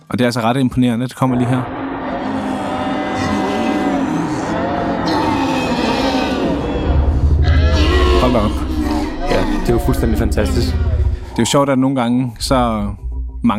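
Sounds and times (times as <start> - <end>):
speech: 0.1 - 1.8, 8.3 - 8.6, 9.6 - 13.5
reconstructed Tyrannosaurus rex roar: 1.2 - 11.5.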